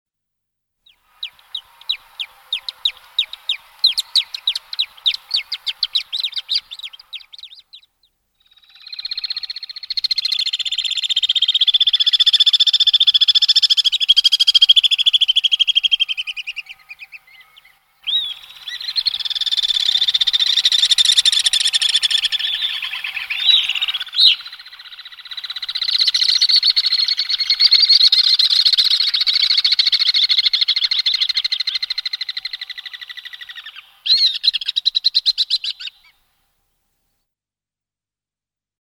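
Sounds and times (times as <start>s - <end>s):
alpine swift calling: 0.9s - 36.1s.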